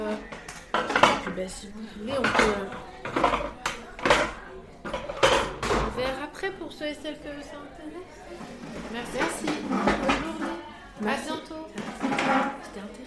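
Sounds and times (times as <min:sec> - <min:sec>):
chairs being stacked and put away: 0:00.0 - 0:01.5, 0:02.1 - 0:06.2, 0:08.2 - 0:10.7, 0:11.7 - 0:12.7
murmur of voices: 0:00.0 - 0:13.0
speech: 0:01.4 - 0:03.5, 0:06.4 - 0:13.0.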